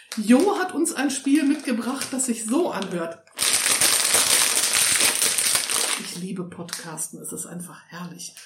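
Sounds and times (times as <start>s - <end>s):
chip bag crinkling: 0.0s - 6.3s
speech: 0.2s - 3.3s, 6.2s - 8.4s.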